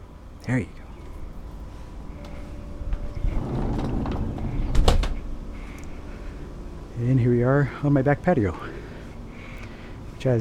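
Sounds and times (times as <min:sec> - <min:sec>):
faint outdoor ambience: 0:00.0 - 0:10.3
speech: 0:00.5 - 0:00.8, 0:07.0 - 0:08.8
door opening clunk and scrape: 0:03.0 - 0:05.3
blinds rustling and sliding as pulled aside: 0:03.3 - 0:05.2.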